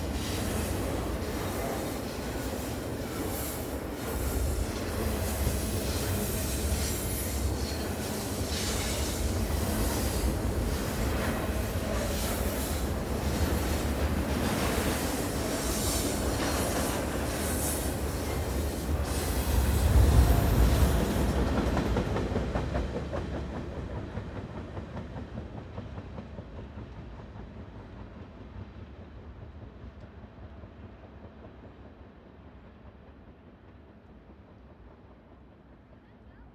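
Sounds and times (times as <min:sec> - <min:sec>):
squealing brakes on a tanker train rounding a bend: 0:00.0 - 0:13.6, 0:14.6 - 0:21.4
long tanker train rumbling past with heavy low clatter: 0:00.0 - 0:36.5.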